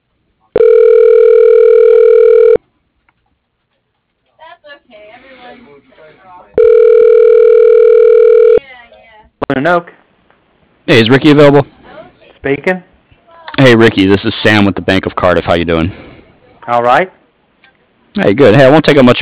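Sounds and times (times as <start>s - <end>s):
telephone ring tones after an automated company menu: 0.6s - 2.6s, 6.6s - 8.6s
speech: 9.6s - 10.0s, 10.9s - 11.8s, 12.4s - 12.9s, 13.6s - 16.0s, 16.7s - 17.2s, 18.2s - 19.2s.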